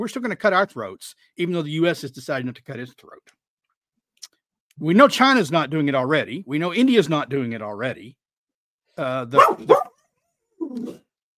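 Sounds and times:
speech: 0.0s - 3.4s, 4.8s - 8.2s, 9.0s - 9.9s, 10.6s - 11.0s
German Shorthaired Pointer dog barking: 9.4s - 10.0s.

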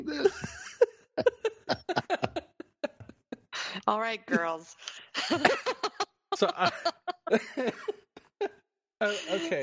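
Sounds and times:
person coughing: 0.0s - 2.4s, 5.2s - 7.9s, 9.0s - 9.6s
person laughing: 0.0s - 3.4s, 5.2s - 8.0s, 9.0s - 9.6s
speech: 3.9s - 5.8s, 6.4s - 8.0s, 9.0s - 9.6s.

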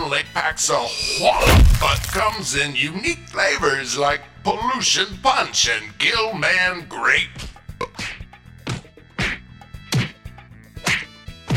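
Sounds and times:
speech: 0.1s - 7.5s
someone being hit with sharp whacks: 1.2s - 2.4s, 9.2s - 10.2s, 10.8s - 11.5s.

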